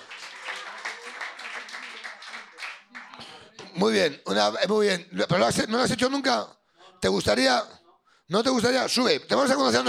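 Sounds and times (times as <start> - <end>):
audience members clapping to welcome a newcomer: 0.0 - 3.8
speech: 3.8 - 9.8.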